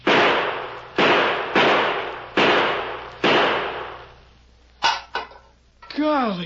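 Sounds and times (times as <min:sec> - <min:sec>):
loud gunshots fired at a tin can: 0:00.0 - 0:04.2.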